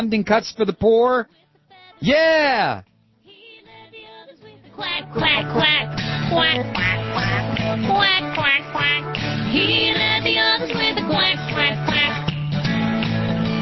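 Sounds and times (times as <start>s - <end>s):
speech: 0.0s - 1.4s, 2.0s - 2.9s, 4.8s - 11.8s
musical accompaniment: 4.7s - 13.5s
duck quacking: 5.2s - 9.4s, 11.5s - 12.3s.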